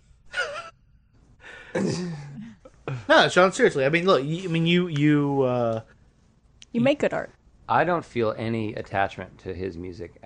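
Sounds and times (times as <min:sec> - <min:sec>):
person inhaling deeply: 0:01.4 - 0:03.0
speech: 0:01.8 - 0:02.3, 0:03.1 - 0:05.9, 0:06.7 - 0:10.2.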